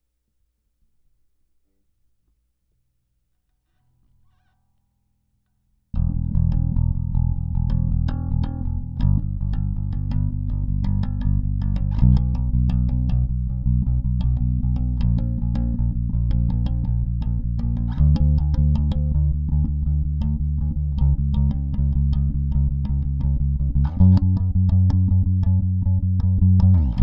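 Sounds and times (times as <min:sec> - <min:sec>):
bass guitar through preamp overdrive and compressor: 0:06.0 - 0:27.0.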